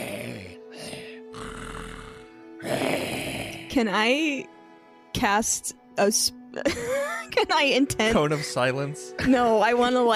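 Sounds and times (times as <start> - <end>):
voice imitating a very loud congested snore: 0.0 - 3.8
speech: 3.8 - 4.5, 5.2 - 10.1.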